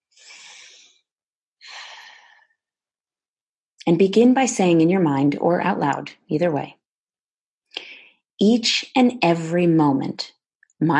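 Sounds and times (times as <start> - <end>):
deep breath during a guided healing affirmation exercise: 0.0 - 1.0, 1.6 - 2.6, 7.7 - 8.2
speech: 3.8 - 6.8, 8.4 - 10.9.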